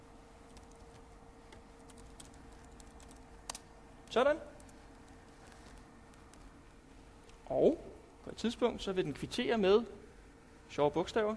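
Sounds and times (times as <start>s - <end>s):
typing on a computer keyboard: 0.5s - 1.0s, 1.8s - 3.6s
speech: 4.2s - 4.5s, 7.5s - 10.0s, 10.7s - 11.3s.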